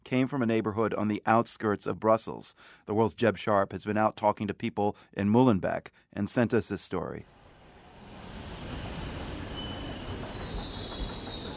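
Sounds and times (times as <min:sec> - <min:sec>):
speech: 0:00.1 - 0:07.4
subway train in Brussels Belgium rumbling along the rails: 0:07.4 - 0:11.5
faint high-pitched subway train wheel squeal: 0:09.2 - 0:11.5.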